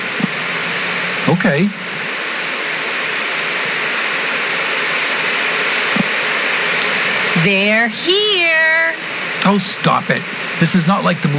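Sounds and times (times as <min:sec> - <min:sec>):
analog TV static white noise: 0:00.0 - 0:11.3
speech: 0:01.2 - 0:01.9, 0:07.4 - 0:11.3.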